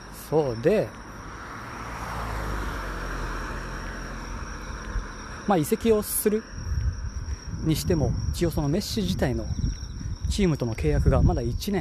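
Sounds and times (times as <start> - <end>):
car passing by with road rumble and tire hiss: 0.0 - 7.6
speech: 0.3 - 1.0, 5.5 - 6.7, 7.6 - 11.7.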